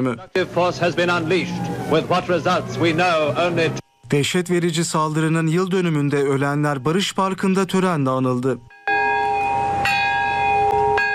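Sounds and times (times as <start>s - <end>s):
speech: 0.0s - 8.7s
peace bell ringing at the atomic bombing memorial ceremony in Nagasaki's Peace Park: 3.8s - 11.1s.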